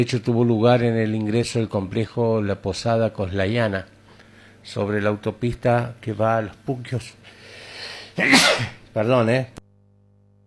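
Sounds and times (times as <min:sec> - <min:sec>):
speech: 0:00.0 - 0:04.0, 0:04.6 - 0:07.3, 0:08.2 - 0:09.6
faint hum: 0:00.0 - 0:10.4
person reading the news sneezing: 0:07.9 - 0:08.8.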